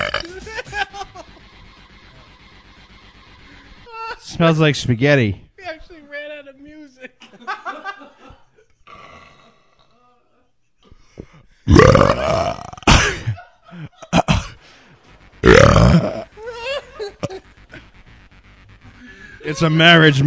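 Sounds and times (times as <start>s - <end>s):
loud drawn-out burps: 0.0s - 0.4s, 8.8s - 9.9s, 11.7s - 13.4s, 14.1s - 14.6s, 15.4s - 16.3s
person chuckling: 0.0s - 1.4s, 12.0s - 14.6s, 16.0s - 17.9s
speech: 4.3s - 5.4s, 19.6s - 20.2s.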